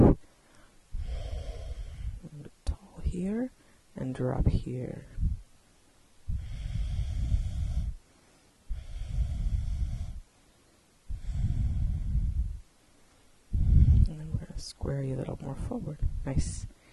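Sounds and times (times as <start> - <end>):
deep Ujjayi breathing during a yoga class: 0.0 - 2.2, 6.3 - 8.1, 8.7 - 10.3, 11.1 - 12.6, 13.5 - 14.4
speech: 3.2 - 5.2, 15.6 - 16.7.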